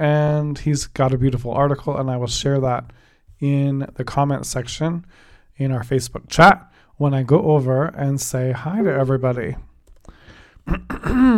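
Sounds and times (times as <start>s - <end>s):
speech: 0.0s - 9.7s, 10.6s - 11.3s
person clearing throat: 10.7s - 11.3s.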